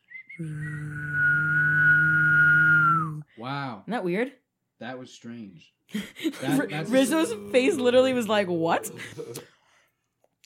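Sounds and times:
person whistling: 0.0 - 3.2
person humming a low steady tone: 0.3 - 3.2
speech: 0.4 - 1.0, 3.8 - 9.6
laughter: 6.0 - 9.6.

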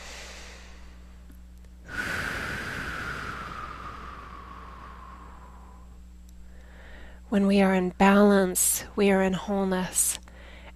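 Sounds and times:
deep breath taken during a spiritual talk: 0.0 - 1.2, 1.9 - 7.3, 10.3 - 10.7
speech: 7.3 - 10.2.

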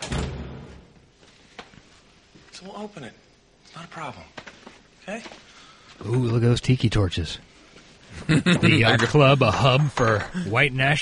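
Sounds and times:
heavy door swinging shut with a low thud: 0.0 - 1.0
speech: 2.6 - 4.4, 5.0 - 7.5, 8.2 - 10.9
laughter: 8.1 - 10.6.

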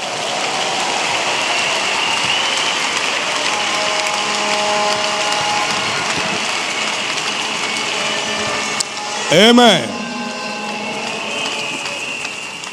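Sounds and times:
standing church audience applauding: 0.0 - 12.7
faint sustained tones: 9.0 - 12.6
speech: 9.3 - 9.9.

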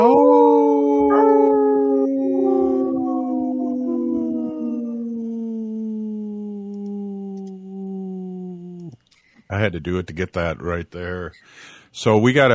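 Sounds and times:
person imitating a wolf howl: 0.0 - 9.0
speech: 9.6 - 12.5.

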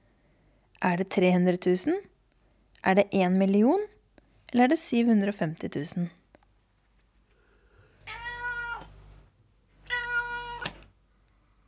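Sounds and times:
speech: 0.8 - 2.1, 2.8 - 6.2
cat meowing: 8.0 - 9.2, 9.8 - 10.9.

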